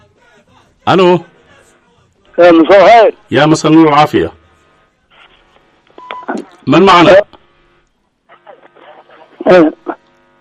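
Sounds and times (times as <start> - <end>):
radio voices in background of phone line: 0.2 - 4.3, 5.1 - 7.4, 8.3 - 10.1
speech: 0.8 - 1.3, 2.4 - 4.4, 6.3 - 7.3, 9.4 - 9.9.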